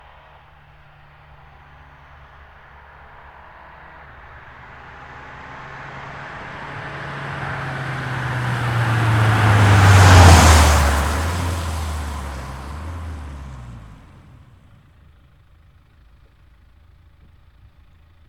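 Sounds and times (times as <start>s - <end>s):
Mini Countryman F60 SD car approaching and passing by on wet road: 1.6s - 14.8s.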